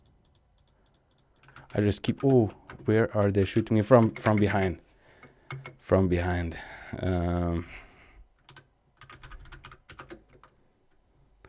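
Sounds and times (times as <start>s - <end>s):
computer keyboard typing during a shooting video game: 0.0s - 4.8s, 8.4s - 10.6s
speech: 1.7s - 4.8s, 5.5s - 7.8s.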